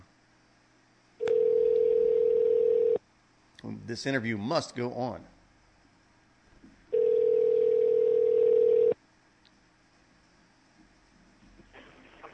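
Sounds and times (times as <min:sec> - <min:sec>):
telephone line tone while calling back a satellite phone: 0:01.2 - 0:03.0, 0:06.9 - 0:09.0
speech: 0:03.6 - 0:05.4.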